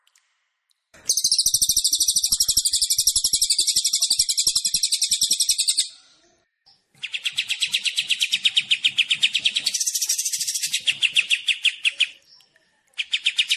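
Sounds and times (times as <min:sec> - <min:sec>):
high fast buzzy trill from a Kapas tembak songbird: 0:01.1 - 0:05.9, 0:07.0 - 0:12.2.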